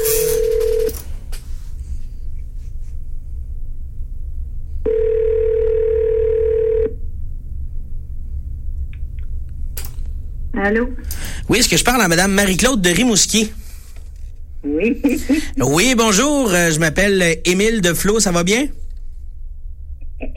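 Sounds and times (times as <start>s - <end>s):
steady telephone dial tone: 0.0s - 1.0s, 4.8s - 7.0s
low constant hum: 0.0s - 20.3s
speech: 10.6s - 13.6s, 14.7s - 18.8s.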